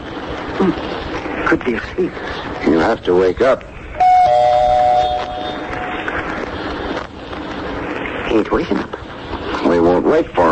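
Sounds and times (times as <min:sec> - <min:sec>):
hum: 0:00.0 - 0:10.5
speech: 0:00.6 - 0:03.8, 0:08.3 - 0:08.9, 0:09.6 - 0:10.5
doorbell ringing with a two-tone chime: 0:04.0 - 0:05.6.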